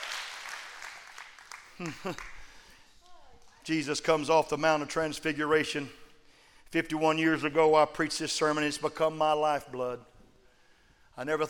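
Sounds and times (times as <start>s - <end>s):
audience clapping: 0.0s - 2.8s
speech: 1.8s - 2.4s, 3.7s - 6.0s, 6.7s - 10.1s, 11.2s - 11.4s.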